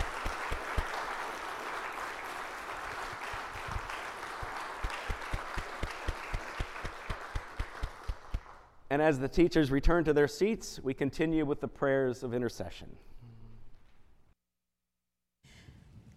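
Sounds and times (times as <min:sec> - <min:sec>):
audience applause: 0:00.0 - 0:08.7
rhythmic clapping: 0:00.0 - 0:08.8
speech: 0:09.0 - 0:13.1.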